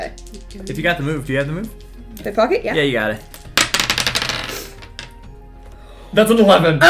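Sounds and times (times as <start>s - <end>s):
dice clattering across a hard surface: 0.0s - 2.4s, 3.1s - 5.3s
speech: 0.0s - 3.3s, 6.2s - 6.8s.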